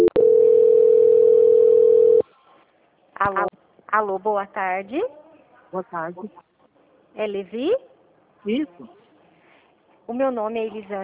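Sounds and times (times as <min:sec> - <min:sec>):
telephone line tone while a call is transferred: 0:00.0 - 0:02.2
speech: 0:03.2 - 0:06.5, 0:07.2 - 0:09.0, 0:10.1 - 0:11.0.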